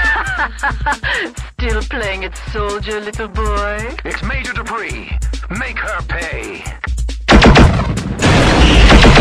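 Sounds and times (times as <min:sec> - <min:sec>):
laughter: 0:00.0 - 0:01.6
speech: 0:00.4 - 0:07.0
heavy booming blasts in a video game: 0:07.3 - 0:09.1
video game automatic gunfire shooting down a helicopter: 0:07.3 - 0:09.1.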